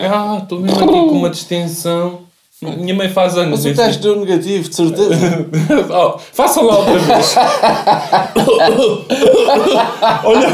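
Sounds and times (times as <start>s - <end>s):
speech: 0.0s - 10.5s
laughter: 5.0s - 10.5s
person coughing: 6.9s - 10.5s.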